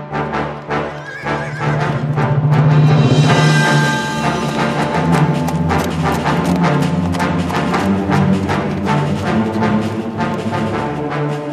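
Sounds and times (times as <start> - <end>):
hoofbeats of an old weak galloping horse being ridden: 0.2 - 11.4
horse neighing during a ride: 0.8 - 2.1.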